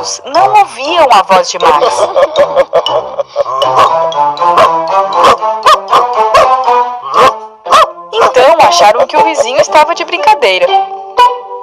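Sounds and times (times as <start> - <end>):
speech: 0.0 - 6.3, 8.6 - 11.4
laughter: 1.7 - 3.9
dog barking: 3.8 - 9.6.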